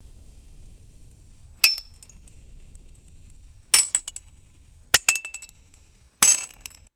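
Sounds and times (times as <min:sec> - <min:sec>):
gentle metallic clinks against rock: 0:01.6 - 0:02.4, 0:03.1 - 0:06.9.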